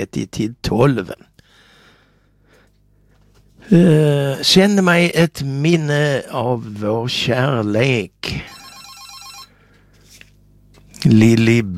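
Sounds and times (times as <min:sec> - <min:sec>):
speech: 0:00.0 - 0:01.3, 0:03.7 - 0:08.6, 0:11.0 - 0:11.7
telephone ringing with an electronic trill: 0:08.4 - 0:09.7.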